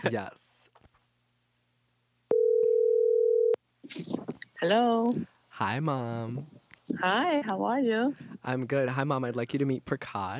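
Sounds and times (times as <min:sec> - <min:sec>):
speech: 0:00.0 - 0:00.4, 0:03.9 - 0:10.3
electronic phone call ring tone: 0:02.3 - 0:03.6.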